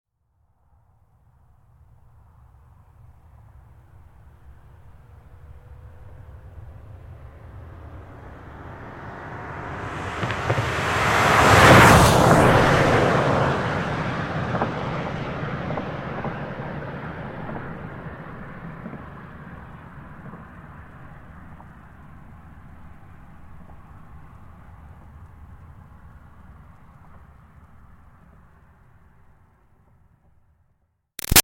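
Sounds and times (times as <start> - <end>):
2005 Toyota Highlander V6 driving very fast: 5.0 - 19.4.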